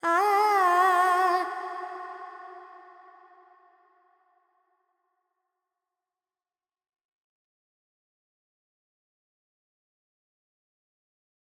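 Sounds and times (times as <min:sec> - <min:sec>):
Carnatic female vocal alap in pentatonic G: 0:00.0 - 0:02.9.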